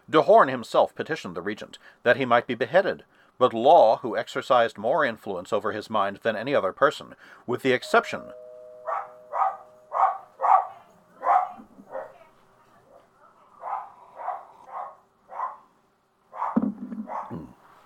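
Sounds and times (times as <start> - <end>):
speech: 0.1 - 8.4
dogs barking in sharp yaps: 8.9 - 12.2, 13.6 - 15.7, 16.3 - 17.5.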